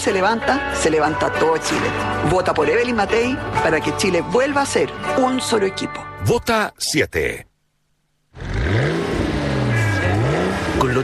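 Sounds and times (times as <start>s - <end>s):
speech: 0.0s - 7.5s
sports car engine revving: 8.3s - 11.0s.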